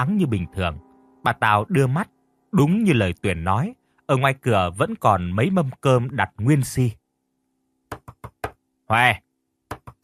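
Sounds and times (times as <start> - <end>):
voice calling: 0.0 - 6.7
speech: 0.0 - 7.0, 8.9 - 9.2
woman pounding on the door of a room in a house: 7.9 - 8.6, 9.7 - 10.0.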